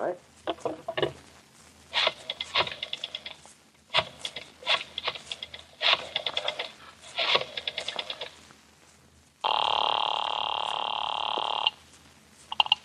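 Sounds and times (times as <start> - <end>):
speech: 0.1 - 0.9
rotary telephone on a desk dialing clicks: 2.0 - 3.4, 4.0 - 8.4
steady electronic telephone ringing tone: 9.5 - 11.8.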